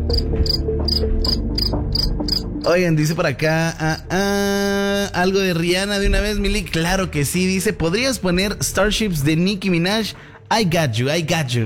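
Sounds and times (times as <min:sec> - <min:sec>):
crickets chirping: 0:00.0 - 0:02.7
speech: 0:00.1 - 0:01.5, 0:02.6 - 0:11.6.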